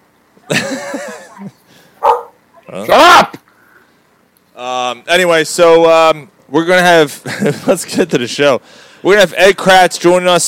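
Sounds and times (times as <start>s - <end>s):
laughter: 0.4s - 1.6s, 7.2s - 8.2s
dog barking: 2.0s - 2.4s
speech: 2.7s - 3.4s, 4.6s - 10.4s.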